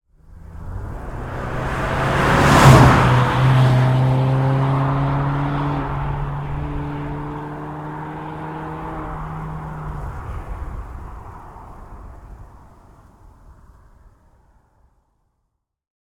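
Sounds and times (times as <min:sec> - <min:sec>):
Mazda 6 III 2.0 Skyactive G passing by at high rpm with whoosh: 0:00.2 - 0:12.6.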